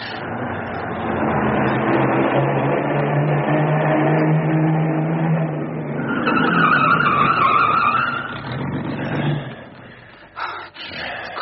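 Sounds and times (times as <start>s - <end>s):
car tires squealing in a skid: 0.0s - 10.0s
car engine rumbling: 0.0s - 11.4s.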